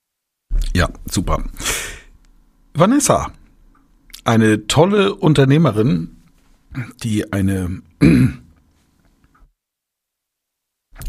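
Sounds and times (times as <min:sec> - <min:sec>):
speech: 0:00.8 - 0:01.7, 0:02.8 - 0:03.4, 0:04.2 - 0:08.4
throat clearing or short cough: 0:08.0 - 0:08.6.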